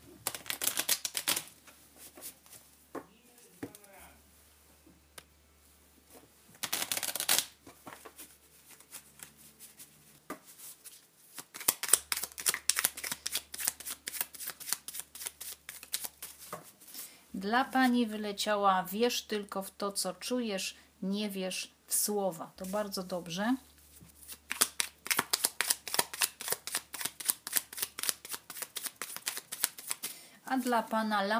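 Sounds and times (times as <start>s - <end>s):
tarot cards riffling and flicking: 0.2s - 1.5s, 6.6s - 9.4s, 10.8s - 17.0s, 24.2s - 30.2s
deck of tarot cards shuffling: 0.2s - 2.6s, 6.6s - 17.1s, 24.0s - 30.2s
speech: 17.4s - 23.7s, 30.6s - 31.3s.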